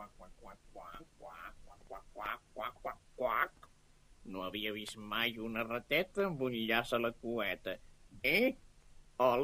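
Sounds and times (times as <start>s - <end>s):
duck quacking: 0.0s - 3.6s
speech: 4.2s - 8.6s, 9.2s - 9.4s.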